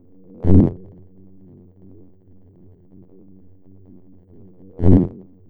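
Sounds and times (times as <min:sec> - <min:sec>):
shaking sound: 0:00.4 - 0:00.8, 0:04.8 - 0:05.2.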